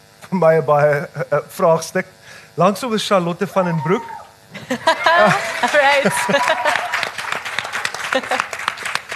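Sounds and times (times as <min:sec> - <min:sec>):
speech: 0:00.3 - 0:06.8, 0:08.2 - 0:08.5
people cheering and whooping: 0:03.5 - 0:08.6
laughter: 0:04.6 - 0:07.1, 0:07.8 - 0:08.7
crowd clapping: 0:05.1 - 0:09.1.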